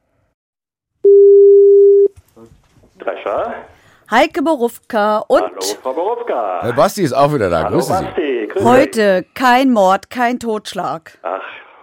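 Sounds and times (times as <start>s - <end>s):
telephone ringing tone: 1.1s - 2.1s
speech: 2.4s - 11.6s.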